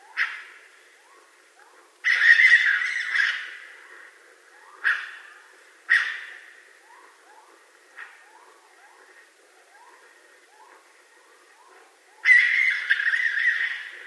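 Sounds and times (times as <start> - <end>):
raccoon making grating screech and harsh bursts: 2.1 - 3.6, 12.2 - 14.0.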